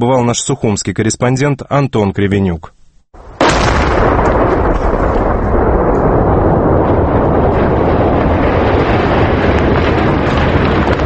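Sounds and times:
speech: 0.0 - 3.2
controlled detonation of an aerial bomb: 3.2 - 11.0.

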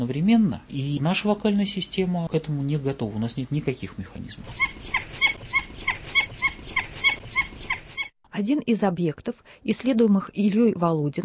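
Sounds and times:
speech: 0.0 - 5.0, 8.4 - 11.2
red wolf squeaky yelps with two fundamental frequencies: 4.4 - 8.1.

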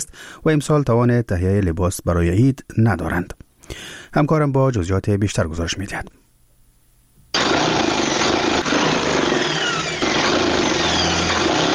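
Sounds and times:
speech: 0.4 - 6.2
sewing machine stitching clothes in a tailor's shop in Kabul: 7.4 - 11.7.

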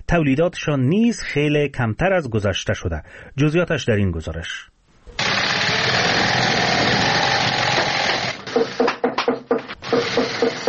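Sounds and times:
speech: 0.1 - 4.7
sewing machines running in a shoe factory in Kabul Afghanistan: 5.2 - 8.8, 9.8 - 10.6.

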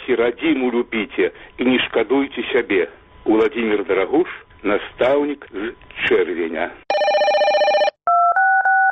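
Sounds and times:
speech: 0.1 - 6.8
harsh telephone ringing signal: 6.9 - 8.0
telephone dialing tones: 6.9 - 8.8.

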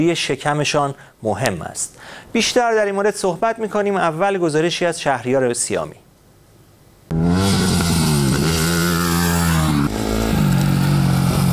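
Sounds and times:
speech: 0.0 - 6.0
motorcycle engine starting up and revving: 7.1 - 11.5.

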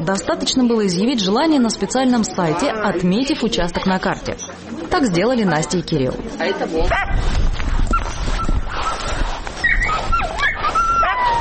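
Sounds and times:
speech: 0.0 - 7.4
steady noisy background: 0.0 - 11.4
hound dogs barking: 6.8 - 11.4
hound dogs whimpering and yelping with high wavering whines: 7.8 - 11.4.

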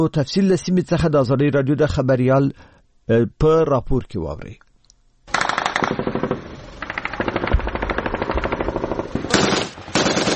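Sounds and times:
speech: 0.0 - 4.6
light and heavy machine-gun bursts in a battle: 5.3 - 10.3.

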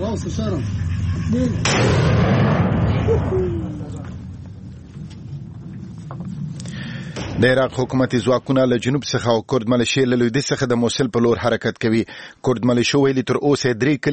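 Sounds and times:
speech: 0.2 - 4.0, 7.4 - 14.1
artillery fire on the outskirts of Mosul during fighting: 1.6 - 3.6.

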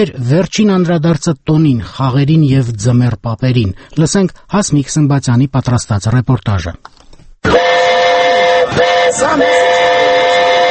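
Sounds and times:
speech: 0.0 - 7.6, 8.8 - 10.2
children's amusement train whistle-like tone in a city square: 7.4 - 10.6.

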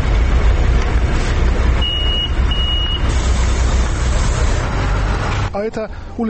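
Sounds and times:
heavy road traffic rumble at a bus stop: 0.0 - 6.2
truck or bus engine droning: 0.0 - 6.2
short electronic reversing beeps: 1.8 - 3.1
speech: 5.6 - 6.2.

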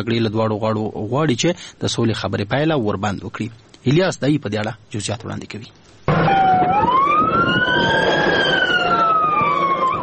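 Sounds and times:
speech: 0.0 - 6.2
low traffic rumble: 0.0 - 10.0
ambulance siren wailing: 6.1 - 10.0.

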